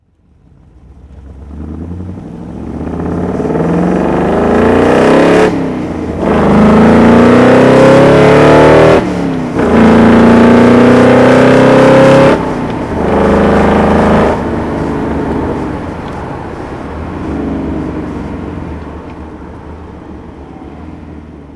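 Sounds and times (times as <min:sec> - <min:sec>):
Shelby AC Cobra 427 recreation engine driving: 0:00.0 - 0:21.5.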